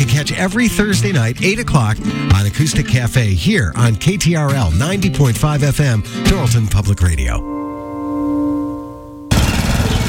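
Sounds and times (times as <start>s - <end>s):
speech: 0.2s - 7.6s
lawn mower engine mowing a lawn: 9.3s - 10.0s.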